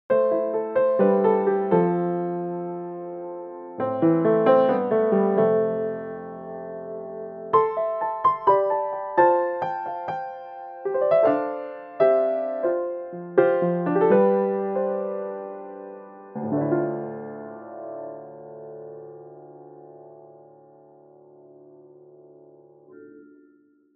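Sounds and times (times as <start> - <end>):
ragtime piano: 0.1 - 19.7.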